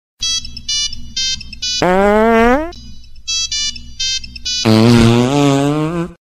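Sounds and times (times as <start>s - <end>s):
fart sound: 1.8s - 2.8s, 4.7s - 6.2s.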